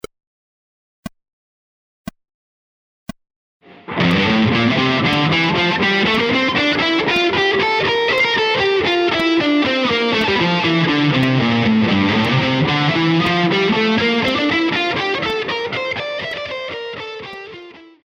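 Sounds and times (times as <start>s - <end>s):
slow scales combining rhythmic variations: 3.8s - 17.8s.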